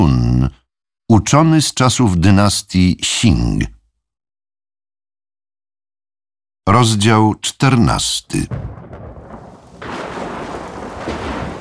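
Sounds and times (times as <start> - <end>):
speech: 0.0 - 3.8, 6.7 - 8.9
deep thunder rumbling in a thunderstorm: 8.5 - 11.5
rain-like hiss in a thunderstorm: 9.4 - 11.5.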